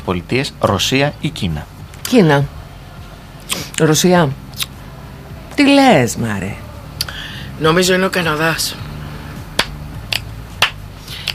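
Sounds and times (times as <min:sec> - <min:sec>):
speech: 0:00.0 - 0:02.6, 0:03.5 - 0:04.4, 0:05.6 - 0:06.6, 0:07.6 - 0:08.8
low steady hum: 0:00.0 - 0:11.3
sharp hand claps: 0:09.4 - 0:11.3.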